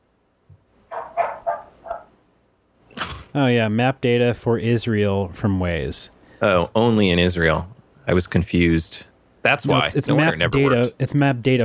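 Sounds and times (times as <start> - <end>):
household pet dog barking sharp yips: 0.9 - 2.2
speech: 3.4 - 11.6.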